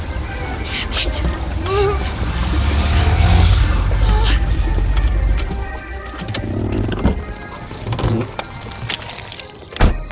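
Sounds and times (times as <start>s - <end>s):
car engine revving and straining while stuck in a swamp: 0.5s - 7.3s
speech: 1.0s - 1.9s.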